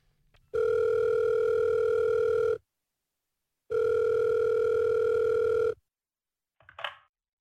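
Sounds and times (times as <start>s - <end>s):
telephone ringing tone heard down the line: 0.5s - 2.6s, 3.7s - 5.8s.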